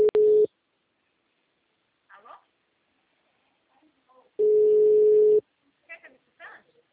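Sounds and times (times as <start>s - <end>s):
steady telephone tone after a phone call drops: 0.0s - 0.5s, 4.4s - 5.4s.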